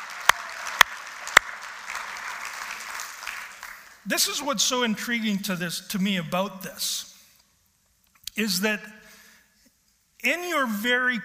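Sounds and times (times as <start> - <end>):
hand claps: 0.0 - 4.0
steady hiss of noise: 0.0 - 11.2
speech: 4.0 - 7.1, 8.4 - 9.0, 10.2 - 11.2.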